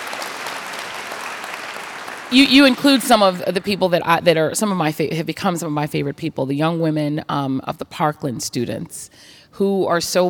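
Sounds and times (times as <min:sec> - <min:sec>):
audience clapping: 0:00.0 - 0:03.8
speech: 0:02.3 - 0:10.2.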